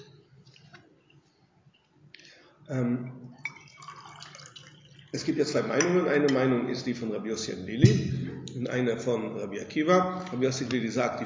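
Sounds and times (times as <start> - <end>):
low room noise: 0.0 - 11.2
speech: 2.7 - 3.4, 5.1 - 11.2
water poured into a glass: 3.3 - 5.8.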